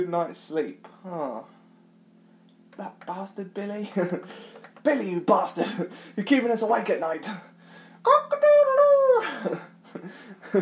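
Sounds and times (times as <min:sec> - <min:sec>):
speech: 0:00.0 - 0:01.6, 0:02.8 - 0:10.6
person imitating a cockerel crowing: 0:08.1 - 0:09.4.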